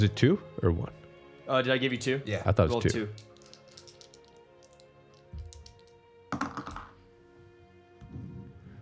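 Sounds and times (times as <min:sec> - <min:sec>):
speech: 0:00.0 - 0:03.3
two six-sided dice rattling across a tabletop: 0:02.9 - 0:07.0.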